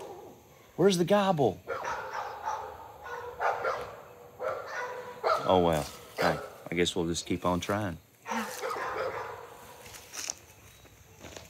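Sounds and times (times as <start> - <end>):
dogs barking: 0.0 - 0.8, 1.6 - 6.8, 8.2 - 9.9
speech: 0.8 - 1.7, 5.5 - 8.0.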